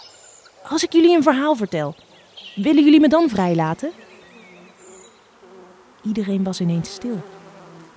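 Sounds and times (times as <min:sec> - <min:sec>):
bees buzzing: 0:00.5 - 0:07.9
speech: 0:00.6 - 0:04.1, 0:06.0 - 0:07.3.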